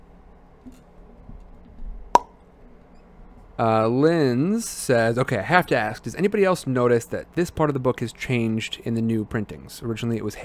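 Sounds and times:
person making a pop with the mouth: 2.2 - 2.4
speech: 3.6 - 10.4.

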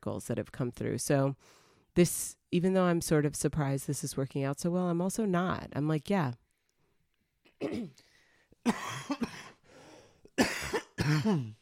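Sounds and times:
speech: 0.0 - 6.4, 7.6 - 9.4, 11.1 - 11.5
person clearing throat: 7.6 - 8.0, 8.7 - 9.6, 10.4 - 11.5
person coughing with harsh raspy bursts: 7.6 - 8.0, 8.6 - 9.6, 10.4 - 11.5.

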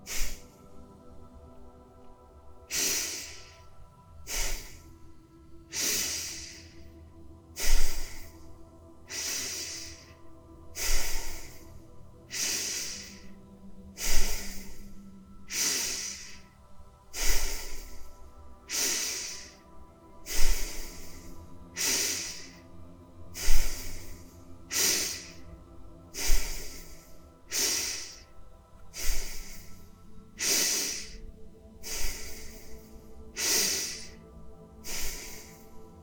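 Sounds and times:
forceful rhythmic breaths drawn sharply in through the nose: 0.0 - 36.0.

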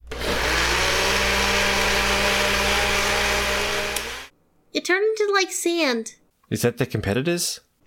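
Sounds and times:
blender whirring: 0.0 - 4.3
speech: 4.8 - 7.7.

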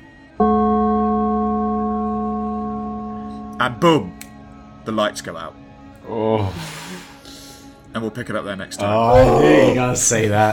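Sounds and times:
gong struck and ringing: 0.4 - 4.2
speech: 3.6 - 4.2, 4.8 - 6.8, 7.9 - 10.5.

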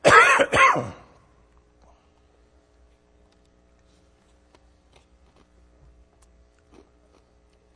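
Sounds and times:
person clearing throat: 0.0 - 1.2
person coughing in harsh hacks: 0.0 - 1.2.

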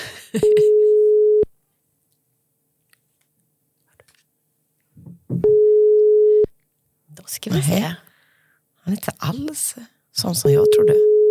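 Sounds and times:
speech: 0.3 - 0.8, 7.2 - 8.1, 8.9 - 11.1
unanswered phone line ringback tone: 0.4 - 1.5, 5.4 - 6.5, 10.6 - 11.2.

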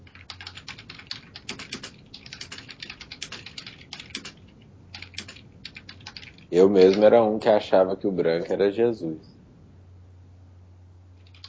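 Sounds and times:
typing on a computer keyboard: 0.0 - 7.1, 11.2 - 11.4
speech: 6.5 - 9.3.

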